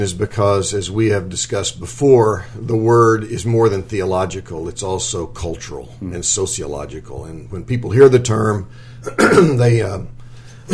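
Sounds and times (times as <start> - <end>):
speech: 0.0 - 10.7
person clearing throat: 9.0 - 9.6.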